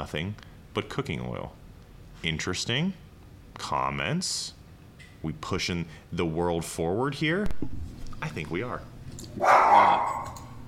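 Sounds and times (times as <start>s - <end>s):
speech: 0.1s - 1.6s, 2.2s - 3.0s, 3.6s - 4.6s, 5.2s - 10.2s
dog barking: 9.4s - 10.4s.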